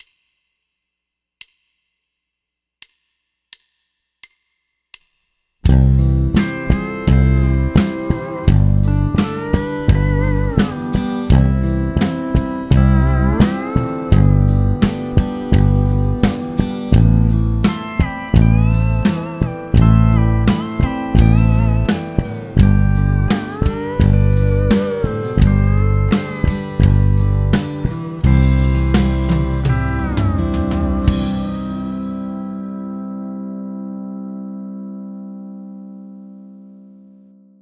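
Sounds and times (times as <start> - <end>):
drum ghost notes: 5.6 - 33.0
full band playing: 5.7 - 32.8.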